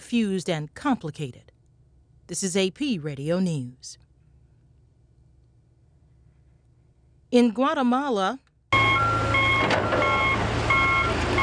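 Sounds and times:
speech: 0.1 - 1.6, 2.3 - 4.0, 7.3 - 8.5
reversing beeps from heavy machinery removing dirt: 8.8 - 11.4.

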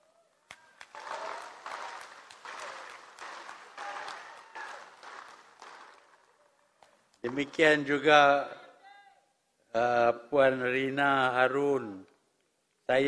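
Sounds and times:
audience applause: 0.5 - 7.7
speech: 7.2 - 8.6, 9.8 - 12.1, 12.9 - 13.0.

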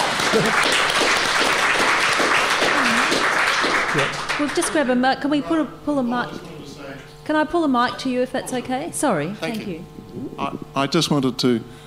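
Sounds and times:
audience applause: 0.0 - 4.8
speech: 0.4 - 0.8, 4.0 - 6.5, 7.2 - 11.8.

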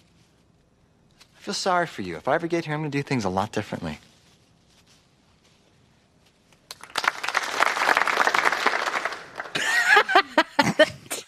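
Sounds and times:
speech: 1.5 - 4.1
spontaneous applause from a film crew: 6.7 - 9.7
laughter: 9.5 - 11.1.

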